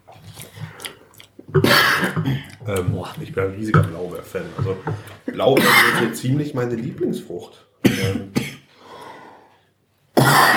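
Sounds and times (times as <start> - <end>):
speech: 1.5 - 8.4
person coughing harshly: 1.6 - 2.5, 5.6 - 6.2, 7.8 - 8.7, 10.2 - 10.5.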